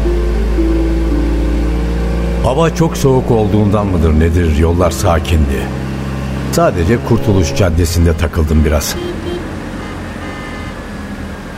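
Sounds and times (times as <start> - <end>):
car engines droning: 0.0 - 11.5
dense street traffic on a very cold day: 0.0 - 11.5
speech: 2.5 - 5.8, 6.5 - 9.3
faint car horn tone: 7.0 - 8.0, 8.8 - 10.9.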